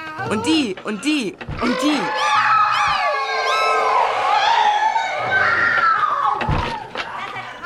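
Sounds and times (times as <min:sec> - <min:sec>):
speech: 0:00.2 - 0:02.4
overlapping high wavering human screams: 0:01.8 - 0:06.9.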